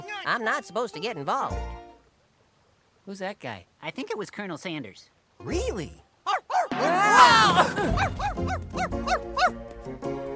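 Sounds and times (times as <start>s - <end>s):
speech: 0.2s - 1.8s, 3.1s - 6.0s, 6.8s - 10.1s
dog barking in sharp yappy barks: 6.3s - 6.8s, 8.0s - 9.6s
laughter: 6.8s - 8.5s
dog whining yelp: 8.0s - 9.6s.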